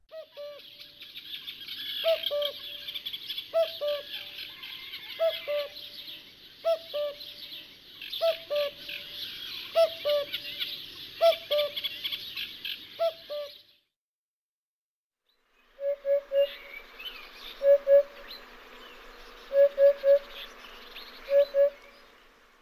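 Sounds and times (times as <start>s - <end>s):
common cuckoo calling: 1.8s - 5.9s, 6.6s - 13.6s, 15.8s - 22.4s.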